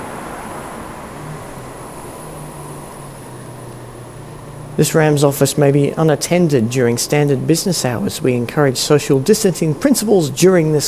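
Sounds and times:
car driving past on a road: 0.0s - 6.0s
speech: 4.8s - 10.8s.

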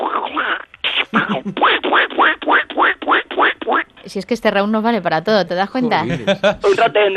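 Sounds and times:
voice imitating a cartoon duck quacking: 0.0s - 3.9s
laughter: 1.1s - 1.6s, 5.9s - 7.0s
speech: 4.1s - 7.1s.

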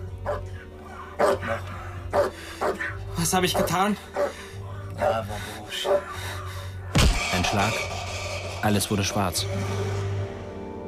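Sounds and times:
leashed German Shepherd barking: 0.2s - 6.4s
speech: 3.2s - 4.4s, 7.5s - 7.9s, 8.6s - 10.1s.

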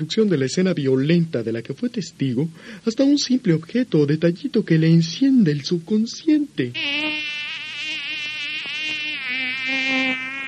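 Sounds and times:
speech: 0.0s - 7.3s
fly buzzing: 6.8s - 10.4s.

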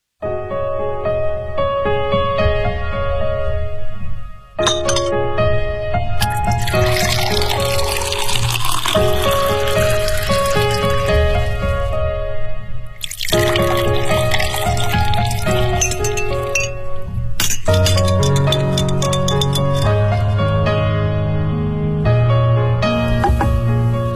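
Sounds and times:
soft music: 0.2s - 24.1s
ice clinking in a cocktail glass: 4.6s - 5.1s, 6.2s - 11.4s, 13.0s - 20.5s
tequila, lemon soda and lime juice cocktail pouring into a glass: 6.2s - 11.7s, 13.0s - 17.0s, 17.6s - 20.5s.

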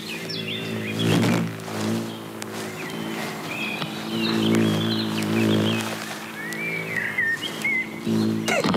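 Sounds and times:
birds chirping and whistling: 0.0s - 8.7s
cockchafers buzzing in flight: 0.0s - 8.7s.

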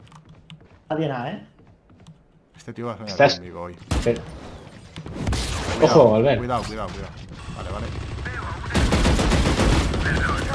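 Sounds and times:
speech: 0.9s - 1.5s, 2.6s - 4.4s, 5.8s - 8.0s
video game gunfire during a shooter match: 3.8s - 10.5s.

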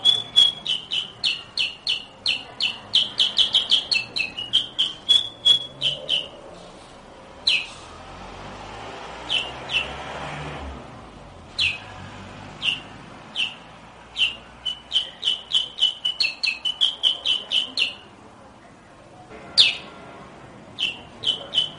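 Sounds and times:
sooty-headed bulbul chirping rapidly: 0.0s - 6.5s, 7.4s - 7.8s, 9.2s - 10.0s, 11.5s - 12.0s, 12.6s - 18.1s, 19.6s - 19.9s, 20.7s - 21.7s
soft background noise: 0.0s - 21.7s.

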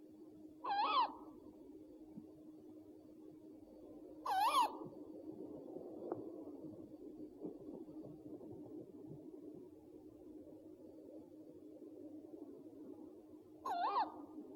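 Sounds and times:
low steady hum: 0.0s - 14.5s
owl giving hoarse wavering calls: 0.6s - 1.3s, 4.2s - 4.9s, 13.6s - 14.3s.

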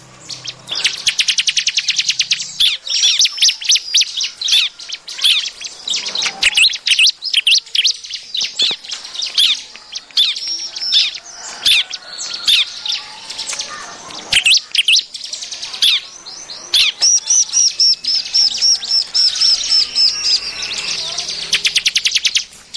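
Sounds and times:
Bar-winged prinia song: 0.0s - 22.7s.

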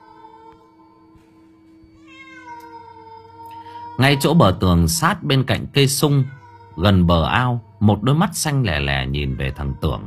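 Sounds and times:
stray cat meowing at night in a garden: 0.0s - 0.8s, 2.0s - 4.7s, 5.9s - 7.8s, 8.8s - 10.0s
speech: 4.0s - 10.0s.

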